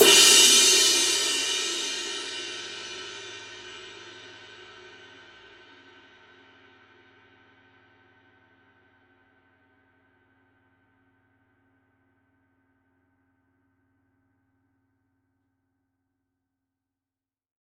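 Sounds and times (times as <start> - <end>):
24-inch medium ride cymbal struck on the edge: 0.0 - 4.0.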